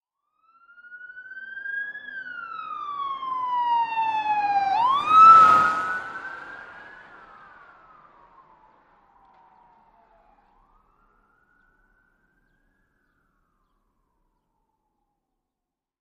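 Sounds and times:
police siren of various types: 0.2s - 15.0s
fast car passing by: 2.4s - 9.0s.

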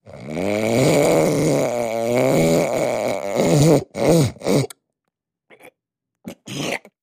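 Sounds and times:
snort: 0.0s - 4.8s, 6.3s - 7.0s.

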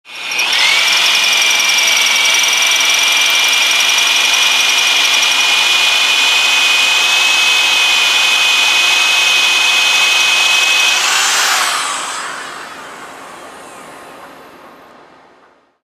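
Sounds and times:
light air tool drill on metal: 0.1s - 15.6s.

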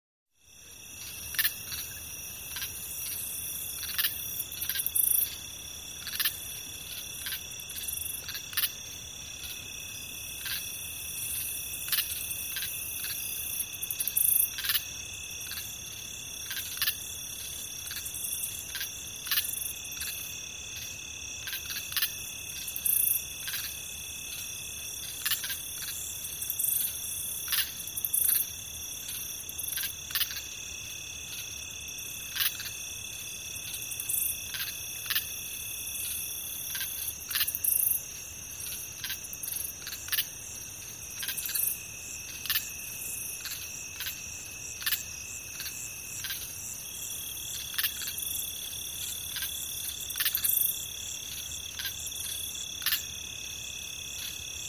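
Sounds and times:
several crickets: 0.3s - 54.6s.

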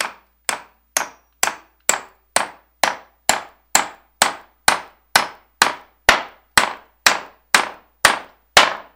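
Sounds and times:
hammering nail into wood: 0.0s - 8.9s.

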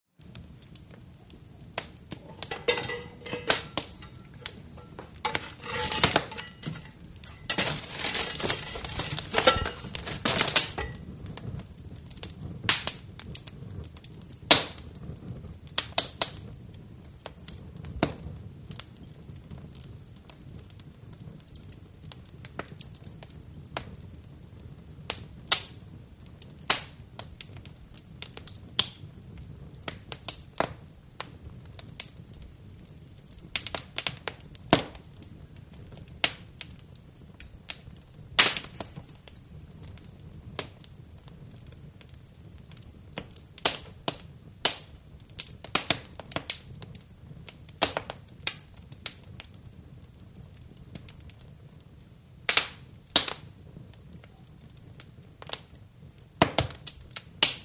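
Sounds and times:
reverberant fireplace fire crackle and snap: 0.2s - 57.6s
poking fireplace fire with poker outdoors: 1.7s - 13.6s, 38.4s - 39.4s.

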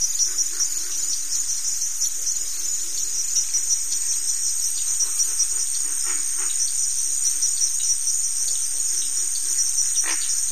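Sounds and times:
cricket giving a continuous high buzzy trill: 0.0s - 10.4s.

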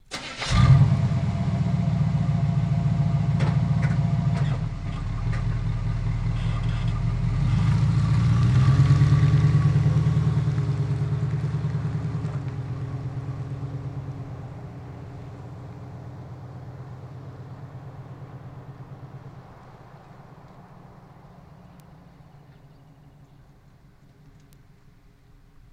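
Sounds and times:
Chevy Blazer starting and driving away slowly: 0.0s - 25.7s.

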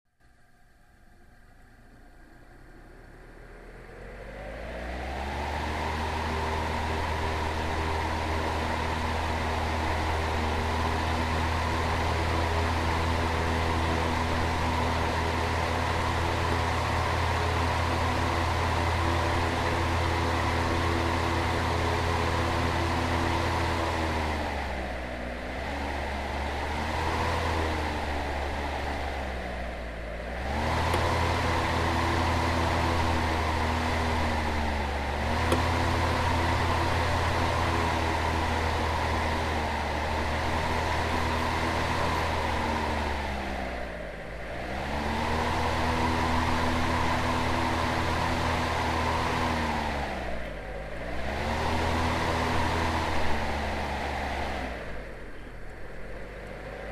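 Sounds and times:
fan blower slowing: 0.2s - 56.9s.

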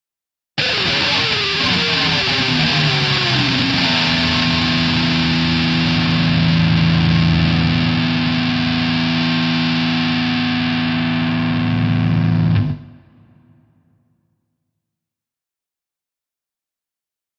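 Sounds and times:
electric guitar played with plectrum: 0.6s - 13.4s.

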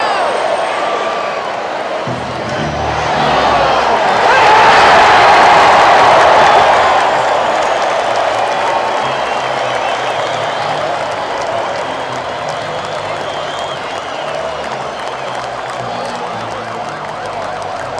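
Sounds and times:
crowd cheering suddenly: 0.0s - 17.9s.

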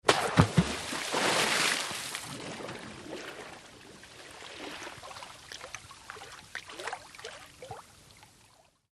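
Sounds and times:
large water splash: 0.1s - 5.6s.

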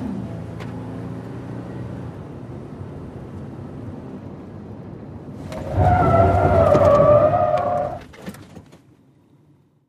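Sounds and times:
SUV skidding heard from interior: 5.4s - 8.1s.

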